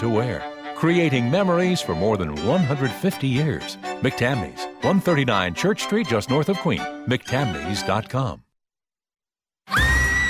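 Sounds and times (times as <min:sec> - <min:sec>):
speech: 0:00.0 - 0:08.4
crowd of young girls screaming: 0:09.7 - 0:10.2.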